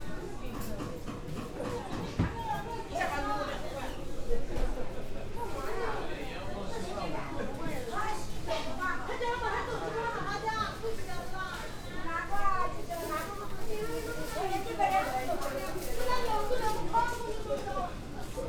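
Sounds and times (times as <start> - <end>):
lively close voices in an interior market in Shanghai: 0.0 - 18.4
plastic bags rustling: 12.3 - 17.3.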